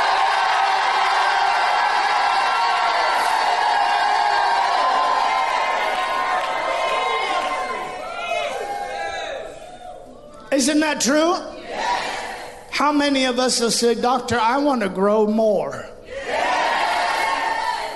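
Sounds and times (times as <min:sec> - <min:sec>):
large audience shouting and cheering with whoops: 0:00.0 - 0:12.7, 0:16.1 - 0:17.9
speech: 0:10.6 - 0:12.0, 0:12.8 - 0:15.9.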